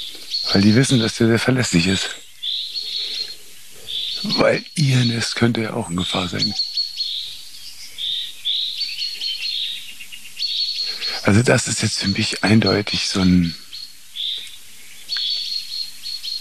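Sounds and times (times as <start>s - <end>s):
chaffinch alarm calls: 0.0s - 16.3s
speech: 0.5s - 2.2s, 4.3s - 6.7s, 11.3s - 13.6s
tit scolding chatter: 4.2s - 6.6s, 10.9s - 13.6s.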